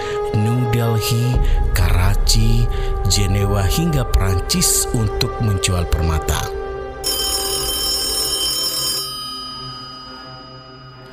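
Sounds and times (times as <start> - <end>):
speech: 0.8 - 6.5
telephone bell ringing: 7.0 - 11.1.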